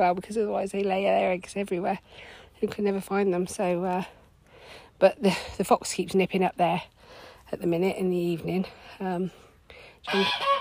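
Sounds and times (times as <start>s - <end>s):
speech: 0.0s - 6.9s, 7.5s - 9.4s, 10.0s - 10.6s
geese honking: 10.1s - 10.6s.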